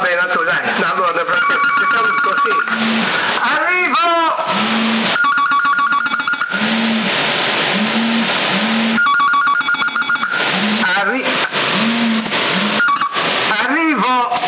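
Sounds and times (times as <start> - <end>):
steady tones: 0.0 - 13.8
home telephone ringing in rapid electronic trills: 1.3 - 3.0, 5.2 - 6.6, 9.0 - 10.4
low hum: 1.3 - 3.4, 6.1 - 9.2, 10.2 - 13.3.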